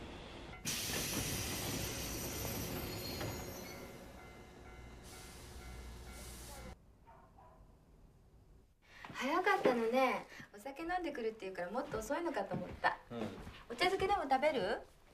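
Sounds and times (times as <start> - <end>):
train rumbling along the rails with hiss and rattle: 0.0 - 6.8
speech: 9.9 - 15.0.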